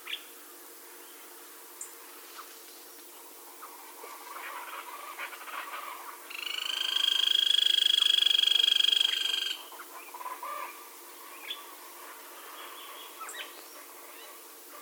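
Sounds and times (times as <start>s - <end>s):
grey-crowned woodpecker buzzy trill: 6.3s - 9.6s.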